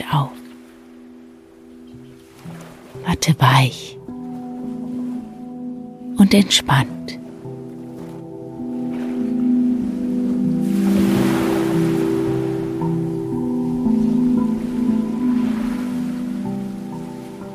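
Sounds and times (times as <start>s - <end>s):
ocean waves: 0.0s - 17.5s
speech: 0.1s - 0.4s, 3.0s - 4.0s, 6.2s - 7.2s
steady sustained musical drone: 3.7s - 17.5s.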